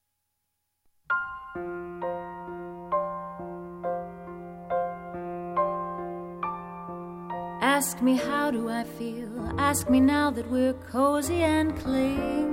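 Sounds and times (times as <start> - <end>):
jazz piano trio piano striking bright chiming chords: 1.1 - 12.5
speech: 1.6 - 1.8, 7.8 - 12.5.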